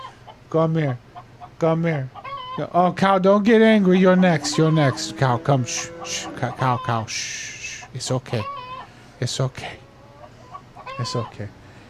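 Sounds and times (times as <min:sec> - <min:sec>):
speech: 0:00.5 - 0:08.6, 0:09.2 - 0:09.8, 0:11.0 - 0:11.6
chicken clucking: 0:01.1 - 0:02.8, 0:03.4 - 0:08.9, 0:09.9 - 0:11.5.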